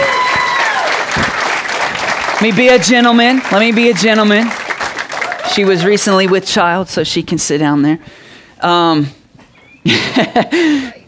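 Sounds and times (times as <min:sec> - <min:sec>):
audience applause at a church service: 0:00.0 - 0:06.7
speech: 0:02.4 - 0:04.6, 0:05.4 - 0:09.2, 0:09.8 - 0:11.0
laughter: 0:09.6 - 0:11.0.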